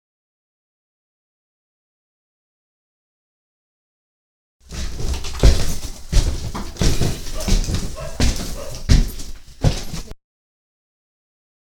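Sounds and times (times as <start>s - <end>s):
person going up stairs: 4.7s - 10.2s
quiet dog bark: 5.4s - 10.1s.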